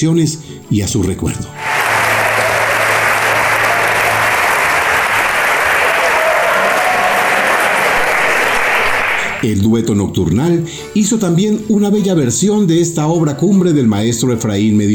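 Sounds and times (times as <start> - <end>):
speech: 0.0 - 2.0, 9.4 - 14.9
sustained applause from a large crowd: 1.6 - 9.5.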